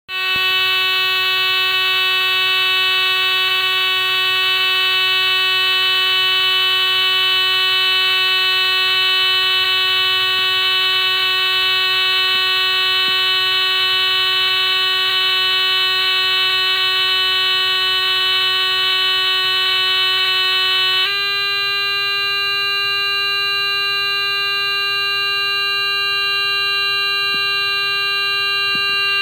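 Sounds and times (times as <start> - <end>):
small buzz: 0.1 - 29.2.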